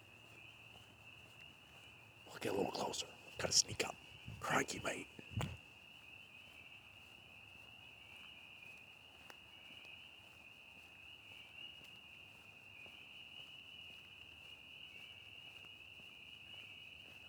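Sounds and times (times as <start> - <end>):
spring peepers calling at night: 0.0 - 17.2
faint low toad calls at night: 1.9 - 6.7
speech: 2.3 - 5.5.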